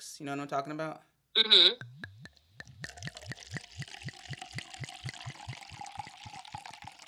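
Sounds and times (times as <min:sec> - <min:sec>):
speech: 0:00.0 - 0:02.0
wine glugging out of a bottle into a glass: 0:02.6 - 0:07.0.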